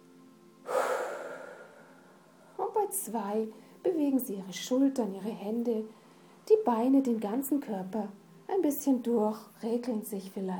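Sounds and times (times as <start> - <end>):
hiss: 0.0 - 10.5
deep breath in during a guided relaxation exercise: 0.6 - 2.6
speech: 2.9 - 10.5.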